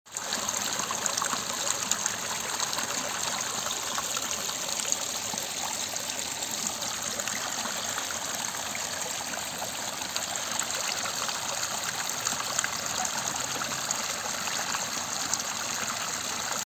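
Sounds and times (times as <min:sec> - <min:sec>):
running water in nature: 0:00.1 - 0:16.6.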